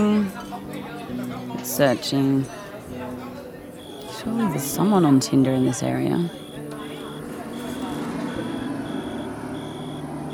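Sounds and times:
speech: 0:01.6 - 0:02.6, 0:04.2 - 0:06.4
high reversing beeps: 0:03.8 - 0:10.3
tractor engine rumbling as it drives off: 0:03.8 - 0:10.3.

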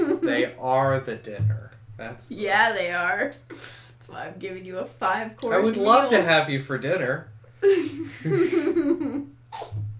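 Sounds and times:
laughter: 0:00.0 - 0:00.4, 0:07.6 - 0:09.2
speech: 0:00.2 - 0:09.8
small quick sharp sneeze: 0:09.5 - 0:09.8.

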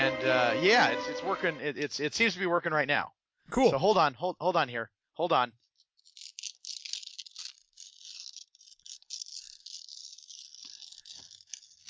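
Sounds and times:
speech: 0:00.2 - 0:05.6
crisp crackly rustling of paper: 0:05.6 - 0:11.8.

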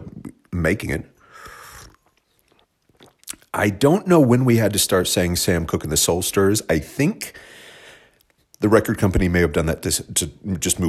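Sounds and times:
speech: 0:00.6 - 0:01.1, 0:03.6 - 0:07.6, 0:08.6 - 0:10.8
slurping sip of tea: 0:01.2 - 0:03.5
mouth clicks: 0:01.2 - 0:03.6
swallowing noises: 0:01.3 - 0:03.5.

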